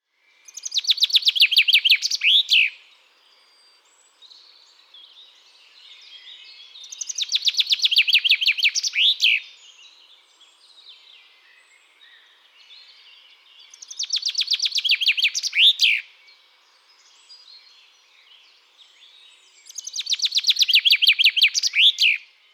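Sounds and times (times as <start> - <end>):
chaffinch calls: 0.5 - 2.8, 6.8 - 9.6, 13.7 - 16.1, 19.6 - 22.3.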